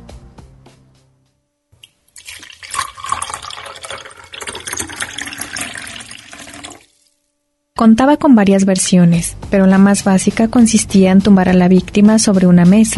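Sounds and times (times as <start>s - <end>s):
water being poured: 2.1s - 7.2s
sharp drips and knocks: 2.2s - 6.9s
speech: 7.8s - 12.9s.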